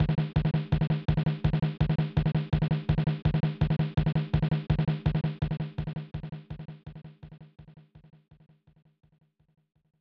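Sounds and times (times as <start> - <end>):
1994 SNES drumbeat: 0.0 - 6.7.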